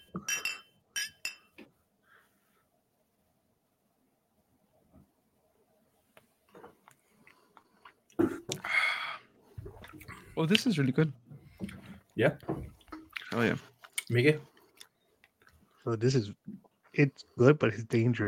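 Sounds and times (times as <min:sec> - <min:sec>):
glasses clinking together in a toast: 0:00.0 - 0:01.6
speech: 0:10.4 - 0:11.2, 0:12.2 - 0:12.5, 0:13.4 - 0:14.5, 0:15.9 - 0:16.4, 0:17.0 - 0:18.2.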